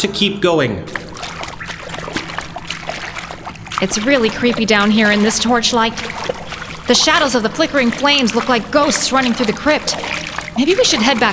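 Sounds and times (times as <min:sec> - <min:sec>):
speech: 0:00.0 - 0:01.0, 0:03.8 - 0:06.3, 0:06.9 - 0:11.3
water trickling in a flooded crypt: 0:00.9 - 0:11.3.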